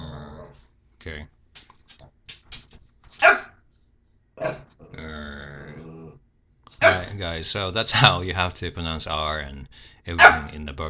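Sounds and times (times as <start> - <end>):
pet dog's rumbling trilled growl: 0.0 - 0.6, 4.4 - 6.2
speech: 1.0 - 1.4, 7.2 - 10.8
pet dog's short gruff barks: 3.2 - 3.6, 6.8 - 7.1, 10.2 - 10.5.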